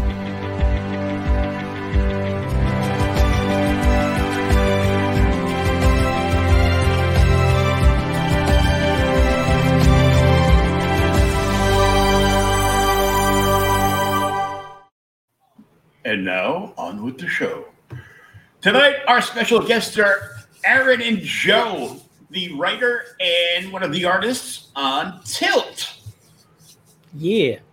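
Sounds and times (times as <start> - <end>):
uplifting instrumental music: 0.0 - 14.9
speech: 16.2 - 17.7, 18.6 - 26.0, 27.1 - 27.7.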